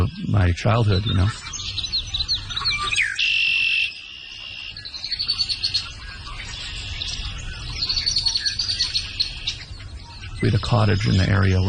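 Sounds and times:
speech: 0.0s - 1.8s, 10.4s - 11.6s
birds chirping and singing outdoors: 0.0s - 11.6s.

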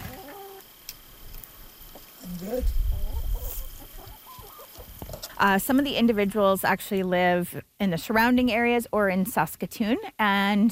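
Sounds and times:
several chickens clucking in short overlapping bursts: 0.0s - 0.8s, 1.8s - 5.8s
low rumbling noise: 1.2s - 4.1s
speech: 2.2s - 3.0s, 5.4s - 10.7s.

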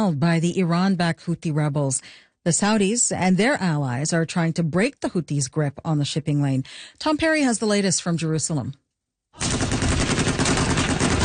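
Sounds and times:
speech: 0.0s - 8.8s
heavy machine guns mounted on pickup trucks firing in Yemen: 9.4s - 11.2s.

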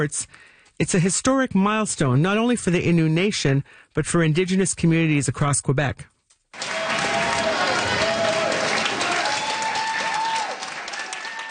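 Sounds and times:
speech: 0.0s - 6.6s
crowd applauding and cheering: 6.6s - 11.4s.

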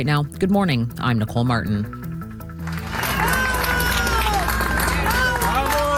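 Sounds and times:
speech: 0.0s - 2.0s
crowd in Caracas Venezuela cheering and shouting at earthquake rescue: 2.8s - 5.9s.

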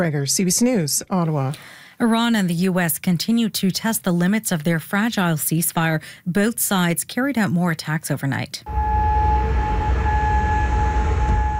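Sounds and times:
speech: 0.0s - 8.9s
air raid sirens in Kuwait City warning of incoming missiles: 8.7s - 11.5s
constant low rumble: 8.7s - 11.5s.

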